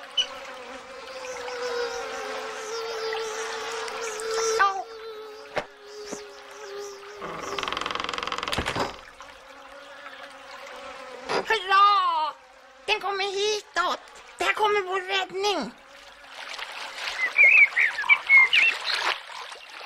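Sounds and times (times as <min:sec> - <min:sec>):
soft chirping and buzzing: 0:00.0 - 0:19.2
frog croaking raspy calls: 0:07.2 - 0:09.0.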